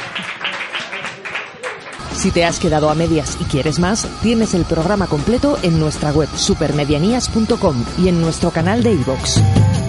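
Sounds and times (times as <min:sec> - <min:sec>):
crowd applauding with dense clapping: 0:00.0 - 0:02.2
speech: 0:02.2 - 0:09.7.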